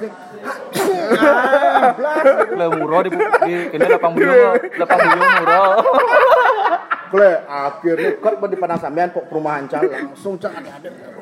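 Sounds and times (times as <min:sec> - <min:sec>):
speech: 0:00.0 - 0:06.4, 0:07.1 - 0:11.1
person sneezing: 0:00.4 - 0:01.3
voiced sounds resembling laughter or talking: 0:00.8 - 0:11.0.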